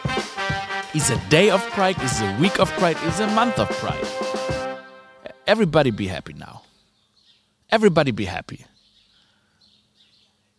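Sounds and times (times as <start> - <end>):
speech: 0.9 - 4.6, 5.5 - 6.7, 7.7 - 8.7
birds chirping in a garden: 5.2 - 10.5.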